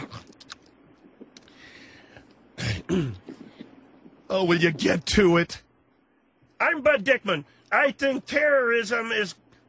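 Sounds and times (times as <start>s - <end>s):
man clearing his throat in rough gravelly bursts: 2.6s - 3.4s
speech: 2.9s - 3.2s, 4.3s - 5.6s, 6.7s - 9.6s.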